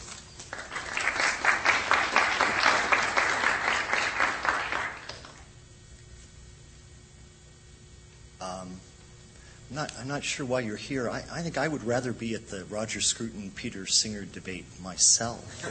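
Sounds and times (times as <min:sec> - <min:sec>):
audience at a lecture applauding to welcome the speaker: 0:00.4 - 0:05.4
speech: 0:09.8 - 0:15.7.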